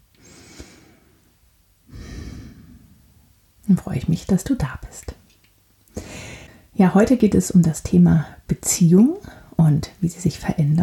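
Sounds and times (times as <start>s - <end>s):
deep breath in and out: 0.2s - 1.3s, 1.9s - 3.1s, 6.0s - 6.7s
speech: 3.7s - 5.2s, 6.8s - 10.8s.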